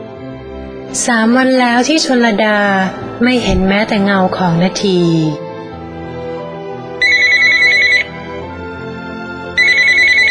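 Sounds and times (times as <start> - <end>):
speech: 0.9 - 5.4
telephone ringing with electronic trilling: 7.0 - 8.3, 9.5 - 10.2.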